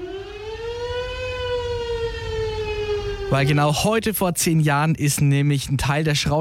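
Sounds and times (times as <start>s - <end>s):
civil defense siren wailing: 0.0s - 3.8s
speech: 3.3s - 6.3s.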